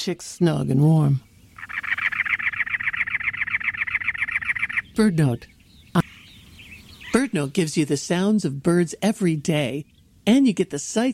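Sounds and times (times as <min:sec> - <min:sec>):
speech: 0:00.0 - 0:01.9, 0:05.0 - 0:06.1, 0:07.1 - 0:11.1
Cactus Wren harsh grating chatter: 0:01.6 - 0:06.4.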